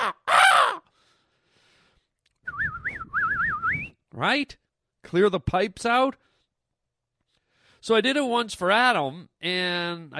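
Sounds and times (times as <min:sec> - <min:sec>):
person imitating a harsh crow-like caw: 0:00.0 - 0:00.9
person imitating a warbling whistled bird trill: 0:02.4 - 0:04.0
speech: 0:04.2 - 0:06.3, 0:07.8 - 0:10.1.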